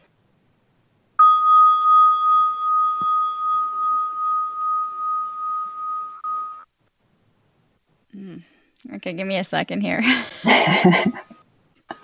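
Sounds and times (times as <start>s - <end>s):
meditation bell ringing with a clear pure tone: 1.2s - 6.7s
speech: 9.0s - 11.3s
laughter: 10.3s - 12.0s.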